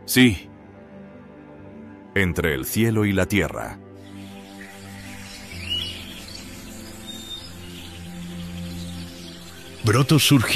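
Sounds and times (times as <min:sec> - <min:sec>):
speech: 0:00.1 - 0:00.5, 0:02.2 - 0:03.8, 0:09.8 - 0:10.5
birds chirping softly: 0:04.0 - 0:10.5.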